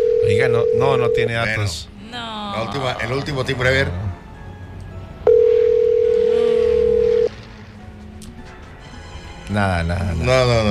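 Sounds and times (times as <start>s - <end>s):
unanswered telephone call ringback tone: 0.0s - 1.6s, 5.2s - 7.4s
speech: 0.3s - 4.0s, 9.5s - 10.6s.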